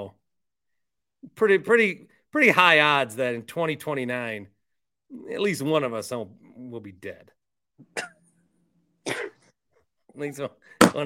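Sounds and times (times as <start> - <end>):
speech: 1.2 - 7.3, 7.9 - 8.1, 10.2 - 11.0
person coughing: 7.8 - 8.2, 9.1 - 9.5.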